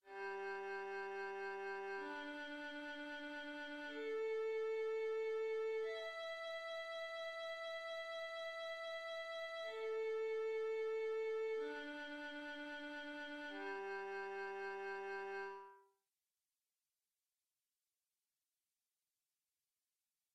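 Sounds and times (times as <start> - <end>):
violin playing open strings in eighth notes: 0.1 - 15.8.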